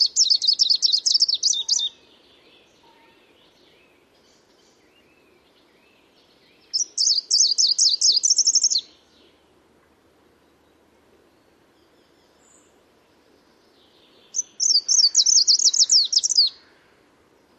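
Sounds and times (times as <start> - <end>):
bird giving high thin trilled phrases: 0.0 - 1.9, 6.8 - 8.8, 14.4 - 16.6
quiet low background noise: 0.0 - 17.5.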